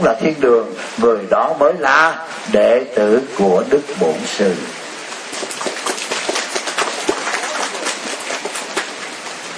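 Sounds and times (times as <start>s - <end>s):
speech: 0.0s - 4.8s
dense rainfall: 0.0s - 9.5s.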